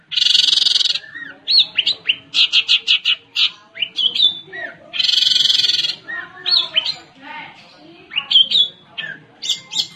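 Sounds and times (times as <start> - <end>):
Long-tailed shrike combination song with harsh buzzy bursts and slurred whistles: 0.0 - 9.9.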